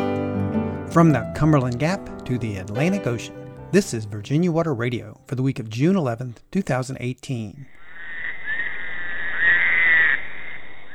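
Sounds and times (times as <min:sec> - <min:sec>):
speech: 0:00.9 - 0:07.8
Fowler's toad buzzy nasal wail along the James River in Virginia: 0:07.8 - 0:10.9.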